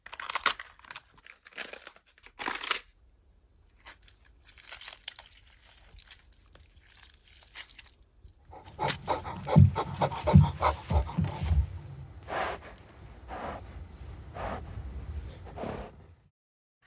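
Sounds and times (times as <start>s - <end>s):
crisp vegetables snapping and crunching: 0.0s - 2.9s, 3.7s - 9.6s
dense chewing and tearing with a growling quality: 0.0s - 2.9s, 3.7s - 13.6s.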